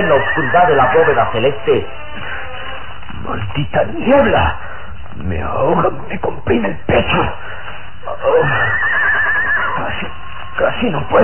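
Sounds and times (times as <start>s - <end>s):
speech: 0.0s - 2.2s, 3.2s - 9.0s, 10.6s - 11.2s
horse whinnying nervously: 0.0s - 3.0s, 8.1s - 10.6s.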